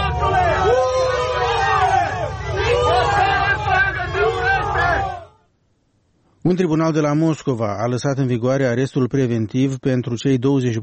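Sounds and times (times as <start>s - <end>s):
crowd of protesters shouting and booing: 0.0s - 5.4s
speech: 6.4s - 10.8s.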